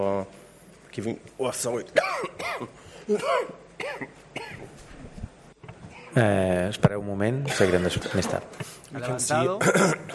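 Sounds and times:
speech: 0.0 - 4.8, 6.1 - 10.1
person coughing in a coughing fit: 2.0 - 4.7, 7.5 - 8.4, 9.6 - 10.1.

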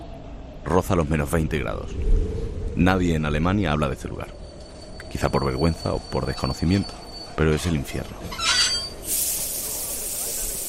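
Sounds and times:
speech: 0.7 - 2.2, 2.8 - 4.4, 5.2 - 8.5
steam hissing from a train arriving at a wartime camp: 9.0 - 10.6.

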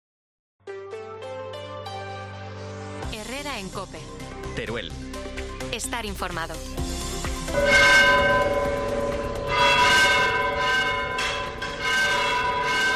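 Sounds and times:
speech: 3.4 - 8.7
church tower bell ringing as alarm: 7.5 - 12.9.

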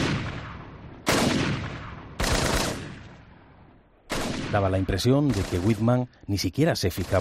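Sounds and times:
rifle gunshots fired from behind a telescopic sight: 0.0 - 3.4, 4.1 - 6.1, 6.9 - 7.1
speech: 4.5 - 7.1.

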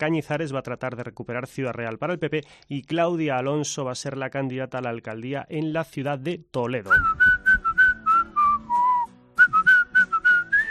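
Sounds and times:
speech: 0.0 - 7.3
faint accompaniment: 0.0 - 10.6
person whistling a short melodic tune: 6.9 - 10.6.

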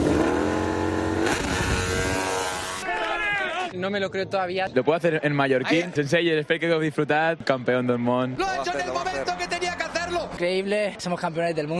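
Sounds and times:
motorcycle engine revving: 0.0 - 2.8
speech: 3.8 - 9.5, 10.2 - 11.7.

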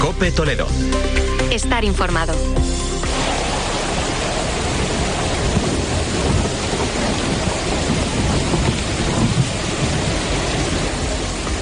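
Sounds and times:
speech: 0.2 - 2.7
heavy rain pouring down in a thunderstorm: 3.0 - 11.6
low thunder rumble: 3.0 - 11.6.

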